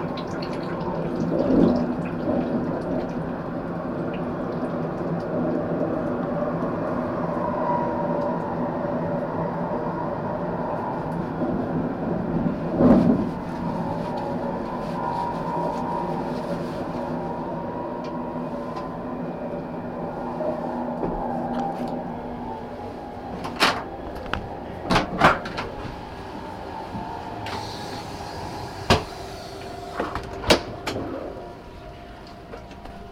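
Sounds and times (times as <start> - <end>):
low mechanical drone: 0.0 - 33.1
rumble inside a moving train carriage approaching a station: 0.0 - 33.1.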